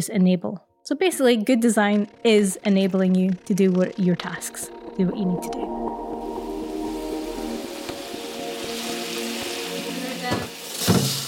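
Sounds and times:
speech: 0.0 - 6.0
pan sizzling while deglazed with whiskey: 6.1 - 11.2.

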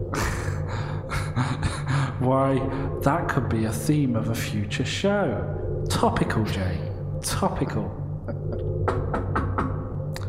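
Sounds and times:
low steady hum: 0.0 - 10.2
speech: 2.2 - 9.0
knocking on a door: 8.9 - 9.8.

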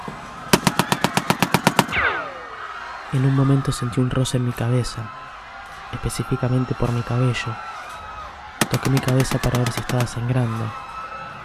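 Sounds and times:
rapid burst of automatic gunshots: 0.5 - 2.5, 8.6 - 10.3
speech: 3.1 - 5.3, 5.9 - 7.7, 8.7 - 10.8.

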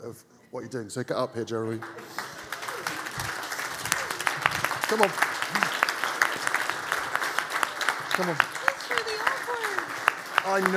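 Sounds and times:
speech: 0.0 - 2.2, 4.9 - 5.6, 8.2 - 9.0, 10.4 - 10.7
murmur of voices: 1.2 - 10.7
audience applause: 1.5 - 10.7.

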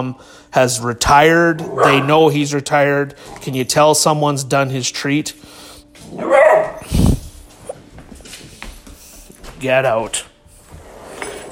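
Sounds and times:
speech: 0.0 - 7.1, 9.6 - 10.3
dog barking: 1.6 - 2.2, 6.2 - 6.8.

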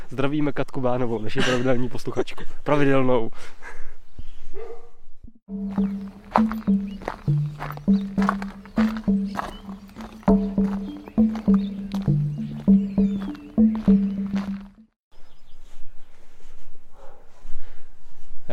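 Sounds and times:
speech: 0.1 - 3.9, 5.5 - 6.5
dogs barking in a village: 4.6 - 5.0
faint outdoor ambience: 5.5 - 18.5.

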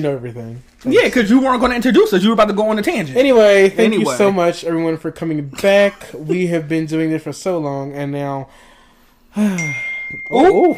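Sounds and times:
speech: 0.0 - 8.7, 9.3 - 10.7
voices exclaiming loudly: 3.8 - 4.3
phone notification chime: 9.6 - 10.7.

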